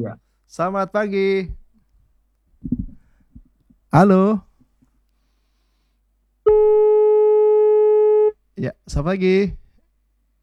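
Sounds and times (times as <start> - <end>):
speech: 0.0 - 1.6, 3.9 - 4.5, 6.4 - 7.0, 8.6 - 9.6
phone line disconnect tone after dropped call: 6.5 - 8.4.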